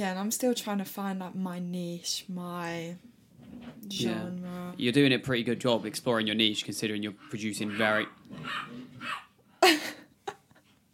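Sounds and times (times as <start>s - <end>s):
speech: 0.0s - 3.1s, 3.8s - 9.9s
dogs barking and fighting outside: 7.2s - 9.4s.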